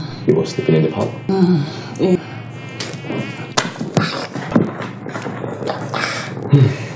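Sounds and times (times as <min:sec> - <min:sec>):
mosquito buzzing: 0:00.0 - 0:04.6
speech: 0:00.2 - 0:02.4, 0:06.5 - 0:06.8.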